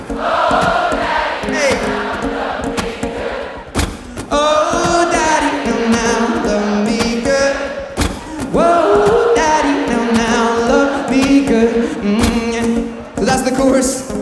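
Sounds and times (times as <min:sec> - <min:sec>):
huge festival crowd singing a melody along loudly: 0:00.0 - 0:14.2.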